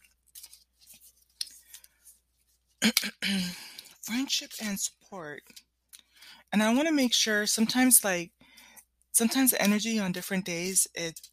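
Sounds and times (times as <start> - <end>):
relationship card deck being shuffled and riffled: 0.1 - 2.6
speech: 2.8 - 5.7, 6.5 - 8.4, 9.2 - 11.3.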